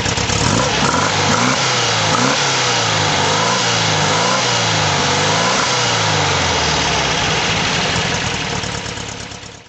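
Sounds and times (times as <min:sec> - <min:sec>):
Porsche 356SC engine throttle: 0:00.2 - 0:09.1.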